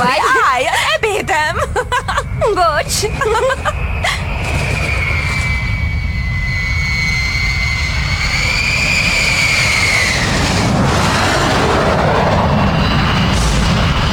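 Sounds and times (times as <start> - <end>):
laughter: 0.0 - 4.3
American bomber warplane engine roar flying overhead: 0.0 - 14.1
high whining tone of bomber warplane: 0.0 - 14.1
speech: 2.5 - 4.1.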